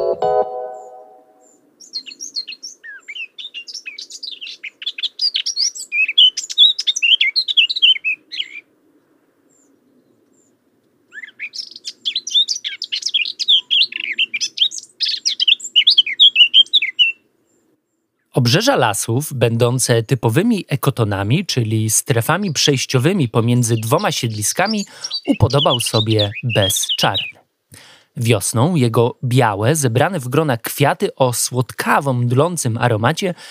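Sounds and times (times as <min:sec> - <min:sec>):
low tone: 0:00.0 - 0:01.5
songbird singing high twittering and trilling notes: 0:00.9 - 0:08.7, 0:09.5 - 0:18.4, 0:22.3 - 0:27.4
speech: 0:18.5 - 0:27.4, 0:28.2 - 0:33.4.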